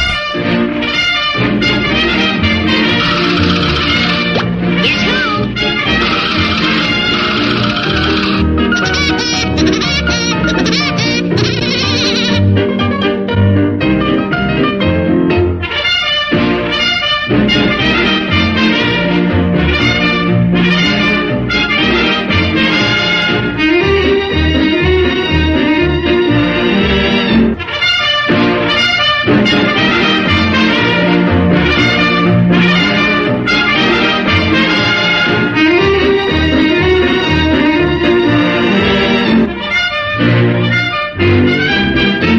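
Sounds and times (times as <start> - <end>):
dense musical backing: 0.0 - 42.3
cartoon woodpecker character's signature laugh ringtone: 2.8 - 12.5.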